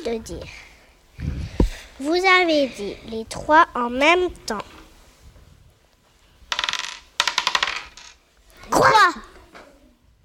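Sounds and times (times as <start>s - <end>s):
speech: 0.0s - 1.3s, 2.0s - 4.7s
dice rolled on a hard surface: 6.5s - 8.2s.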